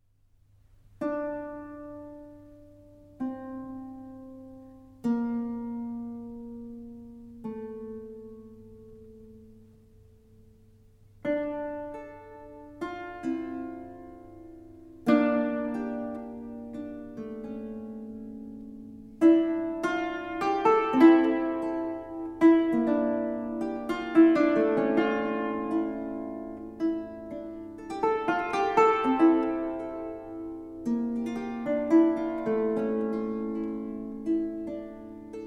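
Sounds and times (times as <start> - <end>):
Baroque harp: 0.9 - 35.4.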